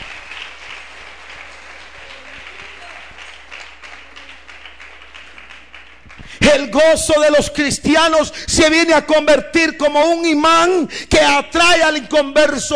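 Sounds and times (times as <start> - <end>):
church congregation applauding: 0.0 - 6.9
speech: 6.5 - 12.7.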